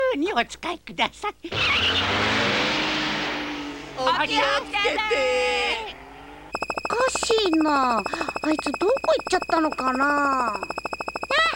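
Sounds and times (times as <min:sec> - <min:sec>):
speech: 0:00.1 - 0:02.6, 0:04.0 - 0:06.0, 0:07.0 - 0:10.8
car engine roaring while speeding off: 0:01.5 - 0:06.6.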